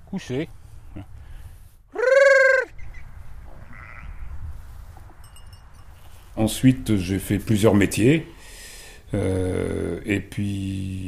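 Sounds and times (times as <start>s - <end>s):
low rumbling noise: 0.0s - 11.0s
speech: 0.1s - 1.2s, 6.4s - 8.4s, 9.1s - 11.0s
sheep bleating in a pen: 3.6s - 4.3s.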